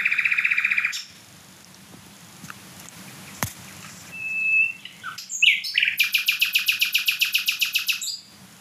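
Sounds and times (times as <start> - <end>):
small songbird singing loudly: 0.0 - 1.2, 3.0 - 8.4.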